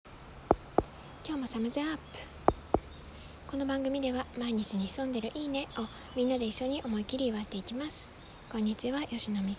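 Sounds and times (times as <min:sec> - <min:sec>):
cicadas buzzing: 0:00.1 - 0:09.5
speech: 0:01.3 - 0:02.4, 0:03.5 - 0:09.5
sharp clicks: 0:02.5 - 0:02.9.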